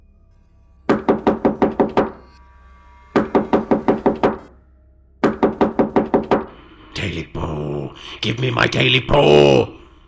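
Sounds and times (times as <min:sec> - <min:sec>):
loud heavy banging on a door: 0:00.9 - 0:02.2, 0:03.2 - 0:04.4, 0:05.2 - 0:06.5
speech: 0:07.1 - 0:09.8.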